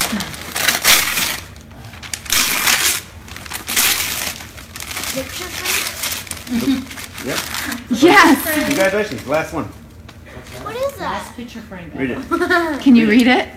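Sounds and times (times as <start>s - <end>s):
gift wrapping paper being torn open: 0.0s - 9.4s
speech: 5.2s - 5.9s, 6.5s - 9.8s, 11.0s - 13.5s.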